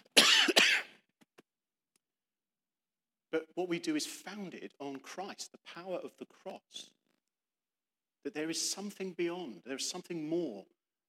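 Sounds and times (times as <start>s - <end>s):
harsh coughs: 0.0s - 1.0s
speech: 3.3s - 7.0s, 8.2s - 11.0s.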